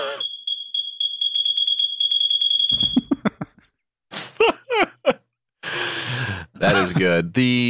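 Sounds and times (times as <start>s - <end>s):
high-pitched smoke alarm beeping: 0.0s - 3.4s
laughter: 3.0s - 5.3s, 6.3s - 7.3s
speech: 6.6s - 7.6s.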